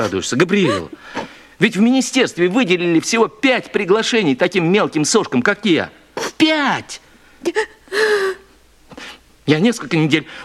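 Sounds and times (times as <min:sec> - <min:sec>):
woman breathy catching sobs: 0:00.0 - 0:01.3, 0:07.4 - 0:08.6
woman crying and whimpering: 0:00.0 - 0:01.3, 0:07.4 - 0:08.6
speech: 0:00.0 - 0:08.4, 0:09.5 - 0:10.4.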